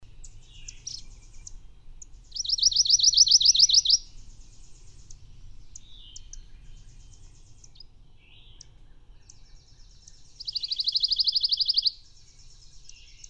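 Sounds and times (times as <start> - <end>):
bird singing trilled phrases: 0.0 - 13.2.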